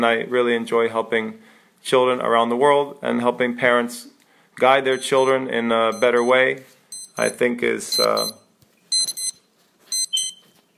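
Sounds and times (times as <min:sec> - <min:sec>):
speech: 0:00.0 - 0:08.4
electronic alarm sounding high-pitched beeps: 0:04.9 - 0:10.6.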